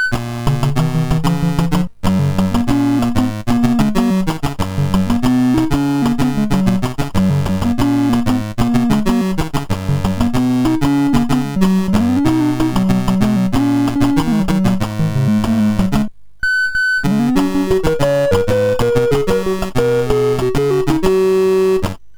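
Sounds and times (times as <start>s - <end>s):
MOS 6581 SID chip game music: 0.2s - 16.1s, 17.0s - 22.0s.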